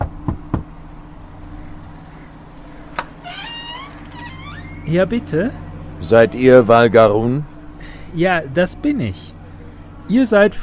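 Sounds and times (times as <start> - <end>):
knocking on a door: 0.0 - 0.7
speech: 4.9 - 7.5, 8.1 - 9.4, 10.1 - 10.6.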